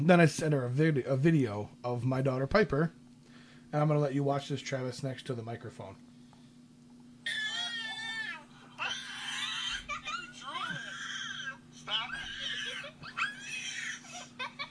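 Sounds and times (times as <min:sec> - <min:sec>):
speech: 0:00.0 - 0:03.0, 0:03.7 - 0:06.1
two-year-old girl screaming: 0:07.3 - 0:14.6.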